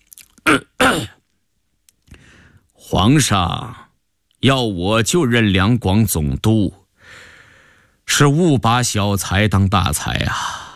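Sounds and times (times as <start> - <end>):
person clearing throat: 0.4 - 1.2
speech: 2.9 - 7.2, 8.1 - 10.6.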